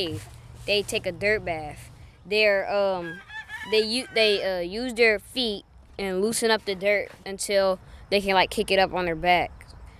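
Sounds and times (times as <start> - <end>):
speech: 0.0 - 9.6
chicken calling: 2.8 - 4.5.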